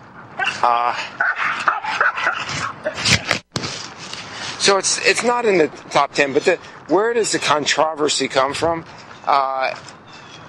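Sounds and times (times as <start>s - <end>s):
dogs barking and yipping: 0.4s - 3.0s
speech: 0.6s - 1.3s, 4.7s - 10.0s.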